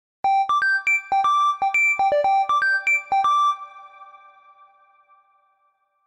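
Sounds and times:
3D beep ringtone: 0:00.3 - 0:03.8.

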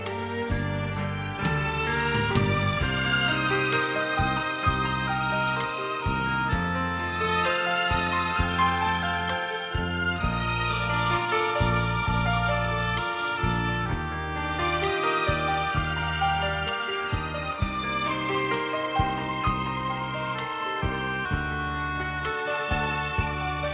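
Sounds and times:
nostalgic classical duduk melody: 0:00.0 - 0:23.7.

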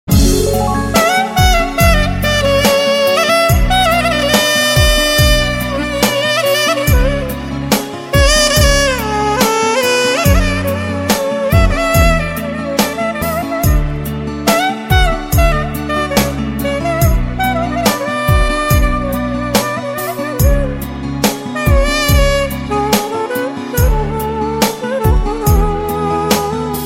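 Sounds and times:
Romanian saxophone: 0:00.1 - 0:26.8.

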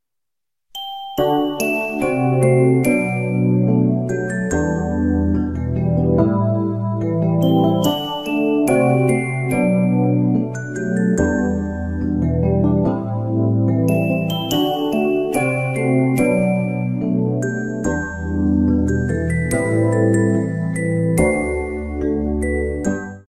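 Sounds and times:
romantic classical melody: 0:01.2 - 0:23.2.

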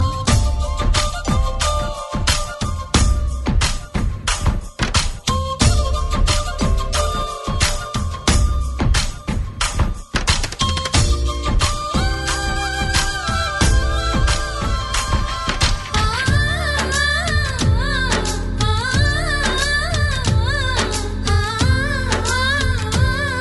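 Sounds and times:
flute electronica music: 0:00.0 - 0:23.4.

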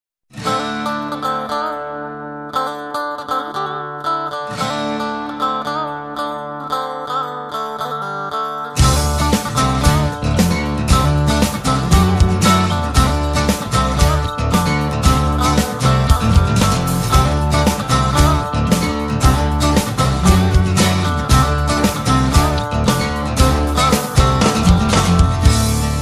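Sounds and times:
electric guitar in rock ringtone: 0:00.3 - 0:25.9
drums in rock ringtone: 0:08.8 - 0:25.9.

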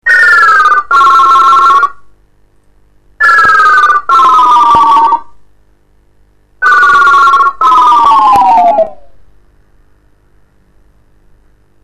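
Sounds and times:
crank phone ringtone: 0:00.0 - 0:02.0, 0:03.2 - 0:05.2, 0:06.6 - 0:07.9.

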